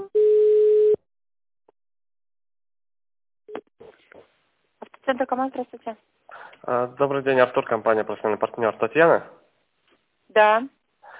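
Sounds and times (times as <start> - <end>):
electronic telephone line tones while a call is transferred: 0.2 - 1.0
speech: 5.2 - 9.4, 10.4 - 10.8.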